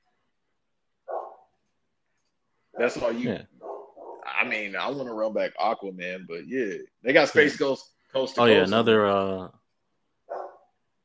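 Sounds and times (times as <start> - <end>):
faint noise: 0.0 - 11.0
dog barking: 1.1 - 1.5, 2.8 - 4.4, 10.3 - 10.7
speech: 2.8 - 3.6, 4.4 - 9.6.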